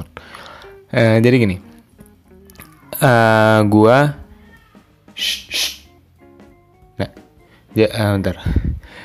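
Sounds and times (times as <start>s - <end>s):
faint low sound: 0.0s - 5.2s, 5.8s - 8.8s
speech: 0.9s - 1.7s, 3.0s - 4.2s, 5.2s - 5.8s, 7.0s - 8.7s
pet cat meowing: 4.2s - 5.0s.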